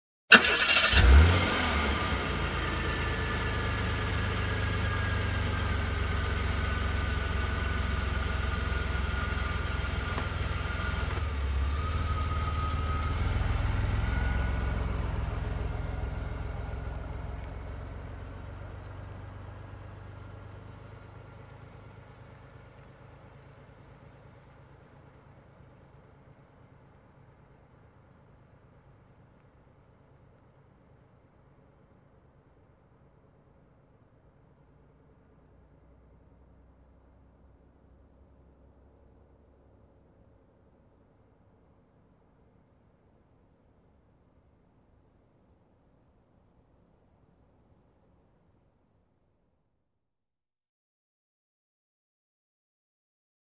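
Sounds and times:
car engine ignition: 0.3s - 27.6s
car driving away slowly: 0.3s - 32.6s.

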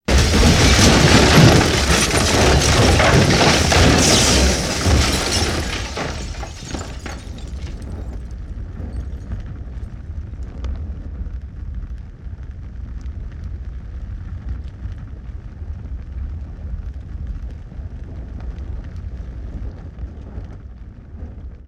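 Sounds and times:
explosions: 0.0s - 7.8s
wood debris: 0.0s - 8.2s.

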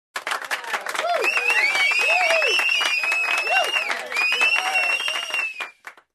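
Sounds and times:
crowd cheering: 0.2s - 6.1s
crowd whistling: 1.0s - 5.9s.

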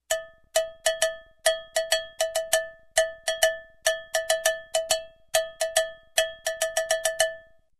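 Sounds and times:
cowbell rhythm: 0.0s - 7.7s.

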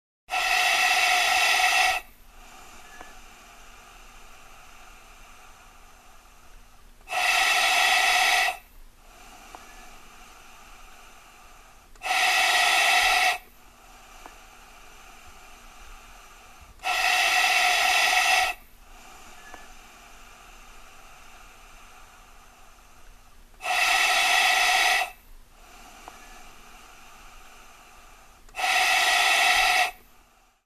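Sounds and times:
breathing in a gas mask: 0.3s - 30.6s.

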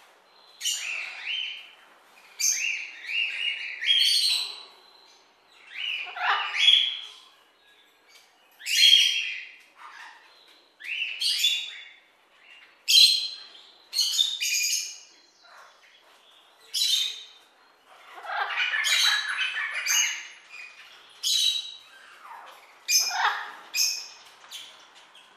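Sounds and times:
bird chirping in short bright bursts: 0.2s - 25.3s.

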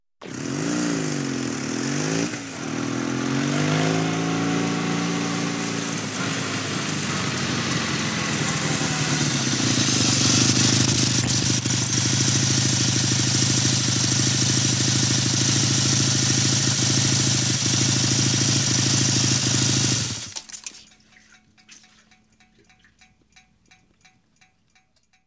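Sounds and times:
cruiser motorcycle approaching and stopping: 0.2s - 20.4s.

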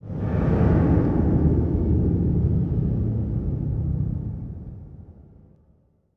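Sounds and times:
horror swoosh: 0.0s - 4.6s.

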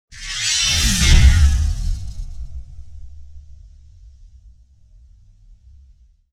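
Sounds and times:
blades grinding: 0.2s - 2.6s
swing whoosh: 0.2s - 3.6s.

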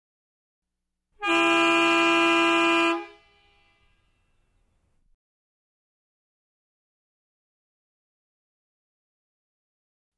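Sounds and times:
sedan car horn honking: 1.2s - 4.7s.

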